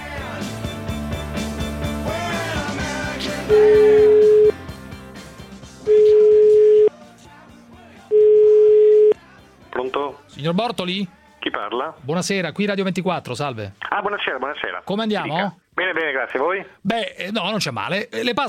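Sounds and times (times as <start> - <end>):
speech: 3.5 - 3.8, 10.5 - 18.4
telephone ringing tones of an outgoing call: 3.5 - 4.6, 5.9 - 6.9, 8.1 - 9.2.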